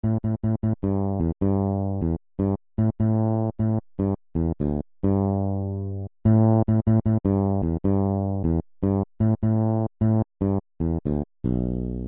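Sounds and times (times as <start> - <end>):
fretless electric bass: 0.0 - 12.0.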